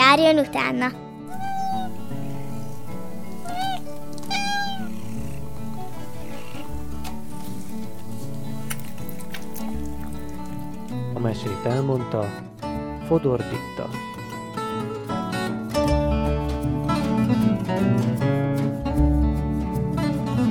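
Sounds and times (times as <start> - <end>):
music: 0.0 - 20.4
speech: 0.1 - 1.0, 11.2 - 12.5, 13.1 - 14.1
cat meowing: 1.3 - 6.8.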